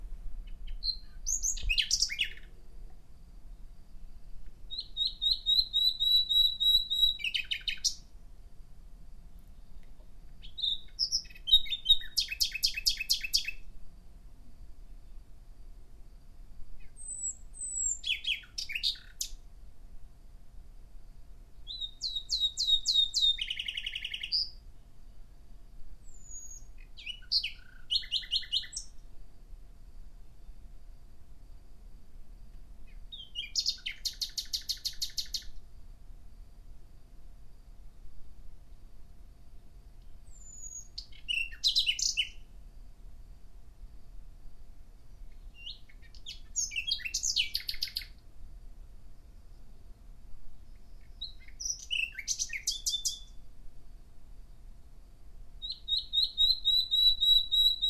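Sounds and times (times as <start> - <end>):
nightingale singing: 0.0 - 8.2, 9.1 - 13.9, 16.7 - 19.5, 21.5 - 25.3, 26.0 - 29.1, 32.8 - 35.7, 40.0 - 42.6, 45.0 - 48.3, 50.6 - 53.5, 55.6 - 57.8.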